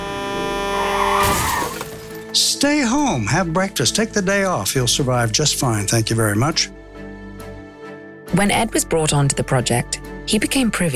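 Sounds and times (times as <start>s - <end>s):
vehicle tires screeching in a long loud skid: 0.6s - 1.9s
vehicle crashing into a pedestrian: 0.9s - 2.3s
speech: 2.4s - 6.8s, 8.3s - 10.9s.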